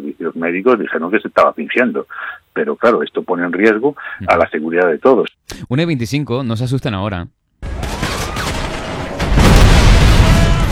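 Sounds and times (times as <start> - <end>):
speech: 0.2 - 7.4
booming video game vehicle explosions: 7.6 - 10.7
video game gunfire: 7.6 - 10.7.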